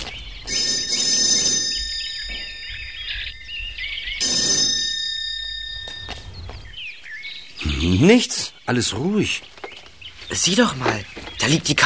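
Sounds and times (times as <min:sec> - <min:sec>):
electric doorbell ringing at a house: 0:00.5 - 0:06.7
speech: 0:07.8 - 0:09.6, 0:10.3 - 0:11.8.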